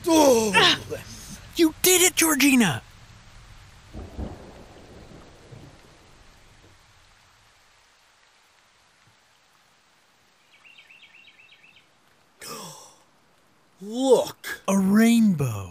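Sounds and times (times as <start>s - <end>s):
steady rain: 0.0s - 15.6s
speech: 0.1s - 2.9s
deep rumble of thunder: 2.8s - 7.4s.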